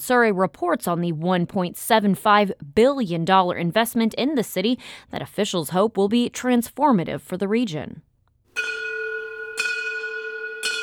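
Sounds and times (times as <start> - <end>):
speech: 0.0 - 8.7
bright resonant opening bell for a new agency campus in St. Louis: 8.6 - 10.8.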